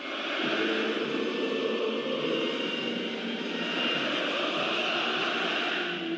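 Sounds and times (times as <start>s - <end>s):
stadium crowd of players and fans singing a national anthem before a match: 0.0s - 6.1s.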